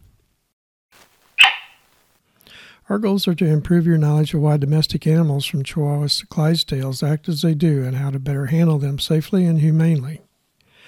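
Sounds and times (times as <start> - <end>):
faint rustle: 0.9 - 2.2
cattle dog barking: 1.4 - 1.8
speech: 2.9 - 10.3.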